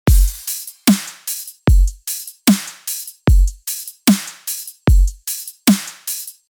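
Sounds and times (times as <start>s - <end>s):
tech house loop: 0.1s - 5.6s.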